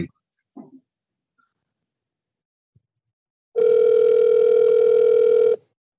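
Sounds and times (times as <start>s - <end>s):
telephone dial tone heard through the handset: 3.6s - 5.7s.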